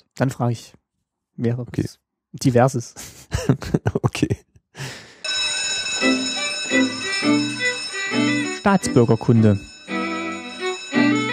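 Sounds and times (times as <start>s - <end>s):
speech: 0.2s - 0.8s, 1.4s - 5.0s, 8.6s - 9.7s
laughter: 3.0s - 4.1s
bell ringing: 5.2s - 11.3s
low chiming notes: 5.2s - 11.3s.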